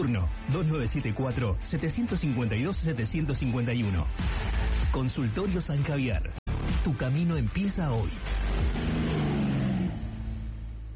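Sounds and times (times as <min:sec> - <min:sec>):
speech: 0:00.0 - 0:08.9
motorcycle engine revving: 0:08.0 - 0:10.9.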